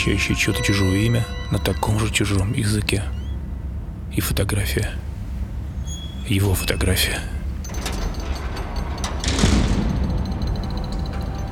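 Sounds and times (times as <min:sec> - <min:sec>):
speech: 0:00.0 - 0:03.2, 0:04.2 - 0:05.1, 0:06.3 - 0:07.4
steady hum: 0:00.0 - 0:11.5
locked door handle and frame clunking and rattling: 0:07.4 - 0:11.5.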